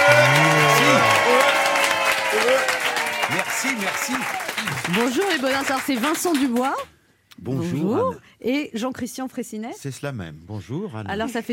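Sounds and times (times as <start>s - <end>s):
loud dense audience applause: 0.0s - 6.9s
speech: 4.9s - 11.5s.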